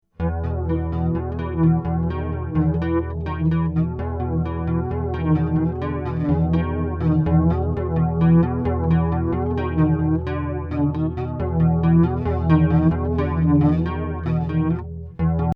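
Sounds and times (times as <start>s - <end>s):
bass through a chorus flanger effect: 0.0s - 15.5s.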